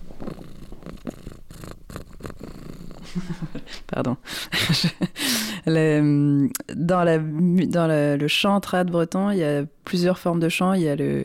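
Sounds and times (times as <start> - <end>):
cat purring: 0.0 - 4.2
speech: 3.1 - 11.2.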